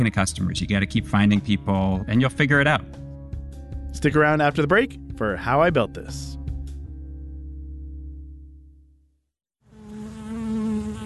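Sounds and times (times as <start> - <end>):
speech: 0.0 - 3.0, 3.9 - 6.4
bees buzzing: 9.7 - 11.0.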